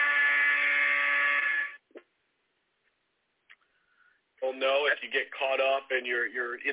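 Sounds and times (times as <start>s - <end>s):
loud steady electronic buzzer from a running timer: 0.0s - 1.8s
speech: 4.6s - 6.7s.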